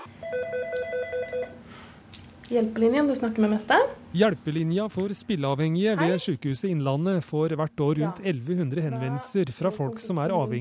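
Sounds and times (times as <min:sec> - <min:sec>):
telephone ringing with a warbling electronic trill: 0:00.0 - 0:01.6
speech: 0:02.5 - 0:10.6.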